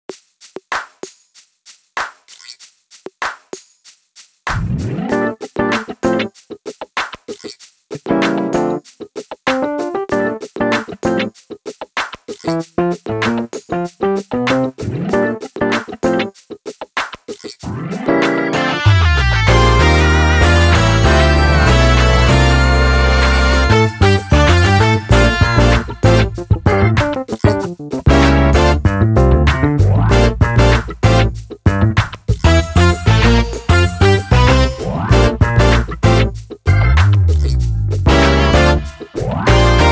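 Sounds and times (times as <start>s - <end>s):
drumless groove: 4.5s - 39.9s.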